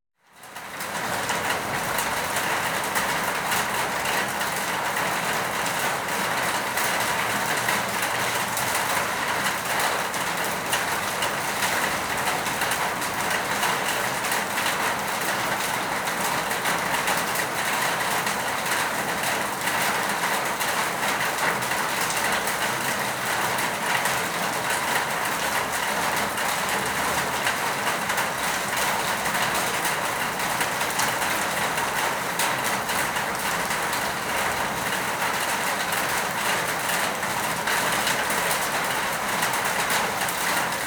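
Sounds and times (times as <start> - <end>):
rain or hail against a tin roof: 0.2 - 40.8.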